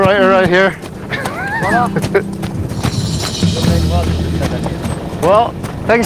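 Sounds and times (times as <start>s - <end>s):
Arabian horse hooves clip-clopping: 0.0s - 6.0s
murmuring voices: 0.0s - 6.0s
laughter: 0.2s - 5.1s
speech: 0.4s - 0.9s, 1.6s - 2.4s, 3.6s - 6.0s
horse whinnying: 1.1s - 1.9s.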